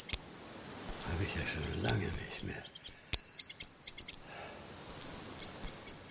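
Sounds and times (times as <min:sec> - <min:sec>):
plum tree rustling: 0:00.0 - 0:06.1
blackbird chirping while foraging for worms: 0:00.9 - 0:04.2, 0:05.0 - 0:06.1
speech: 0:01.3 - 0:02.8.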